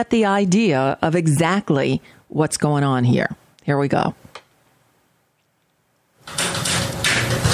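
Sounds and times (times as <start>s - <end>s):
speech: 0.0s - 4.3s
door sliding or swinging open with a rumbling scrape: 6.2s - 7.5s.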